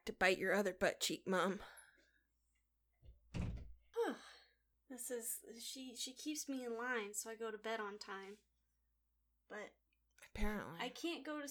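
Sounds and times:
speech: 0.0 - 1.8, 4.9 - 8.5, 9.5 - 11.5
door shutting with a muffled thunk: 3.3 - 3.8.

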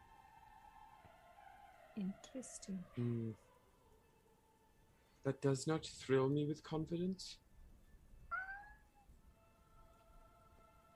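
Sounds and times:
speech: 2.0 - 3.5, 5.2 - 7.4
cat meowing: 8.3 - 9.0.

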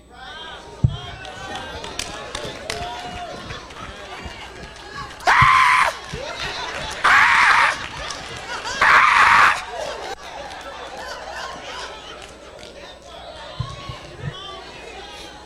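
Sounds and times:
audience shouting and murmuring: 0.0 - 15.4
laughter: 0.0 - 15.4
loud sustained screams: 1.3 - 10.1.

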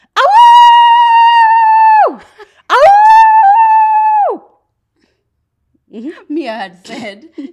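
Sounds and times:
person imitating a dog howl: 0.2 - 4.4
speech: 6.6 - 7.5.

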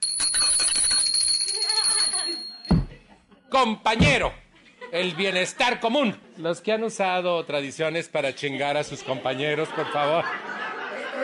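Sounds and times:
hand bell rung at a meeting: 0.0 - 2.9
laughter: 0.5 - 3.5, 4.5 - 11.2
dull thump: 2.7 - 3.0, 4.0 - 4.4
speech: 3.6 - 10.6.

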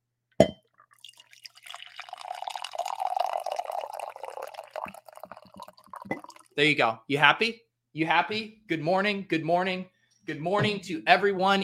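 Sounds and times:
coffee poured from a pot into a mug: 0.8 - 6.6
speech: 6.6 - 11.6.

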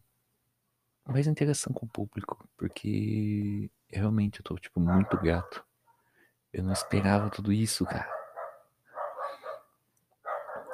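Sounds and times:
speech: 1.1 - 5.7, 6.5 - 8.2
dog barking in the background: 4.8 - 6.0, 6.7 - 10.7.

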